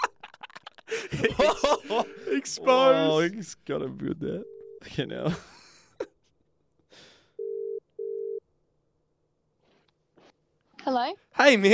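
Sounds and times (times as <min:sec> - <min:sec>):
laughter: 0:00.0 - 0:03.4, 0:05.2 - 0:06.3
speech: 0:01.1 - 0:05.5, 0:10.9 - 0:11.7
phone ringback tone of a call to a friend: 0:07.4 - 0:08.4.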